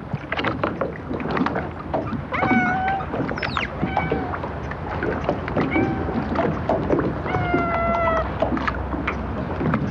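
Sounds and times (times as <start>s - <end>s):
lapping water at a fishing harbor in Japan: 0.0s - 9.8s
wind at a fishing harbor in Japan: 0.0s - 9.8s.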